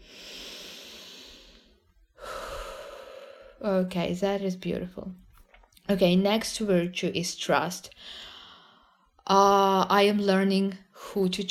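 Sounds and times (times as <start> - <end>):
deep breath in and out during a guided relaxation exercise: 0.0 - 3.6, 8.0 - 9.2
speech: 3.6 - 5.2, 5.9 - 8.3, 9.3 - 11.4.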